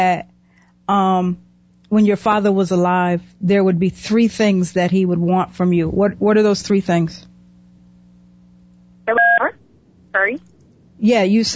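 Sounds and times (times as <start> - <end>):
speech: 0.0 - 0.3, 0.9 - 7.3, 9.1 - 9.5, 10.1 - 11.5
low phone-line hum during a phone call: 6.9 - 11.5.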